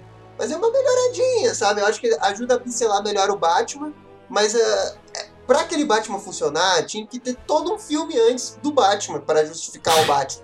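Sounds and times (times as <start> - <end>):
speech: 0.4 - 10.4
sharp loud sneeze: 9.9 - 10.3.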